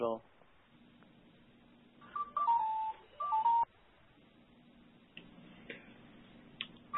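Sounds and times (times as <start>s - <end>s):
speech: 0.0s - 0.3s
phone ringing with electronic tones: 2.0s - 3.7s.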